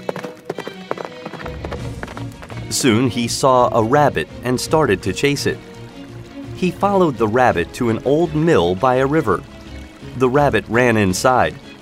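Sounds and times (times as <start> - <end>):
horse hooves clip-clopping as a prince rides toward a forest: 0.0 - 7.2
speech: 2.7 - 5.7, 6.6 - 9.5, 10.1 - 11.6.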